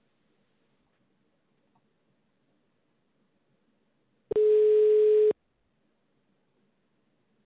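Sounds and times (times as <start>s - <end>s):
telephone ringback tone while call connects: 4.3s - 5.4s.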